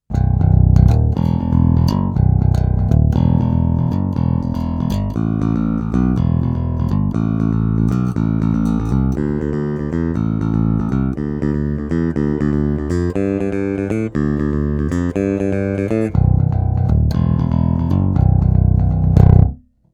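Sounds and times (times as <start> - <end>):
five-string fretted bass guitar with stainless steel roundwound strings played with a pick: 0.0 - 19.8.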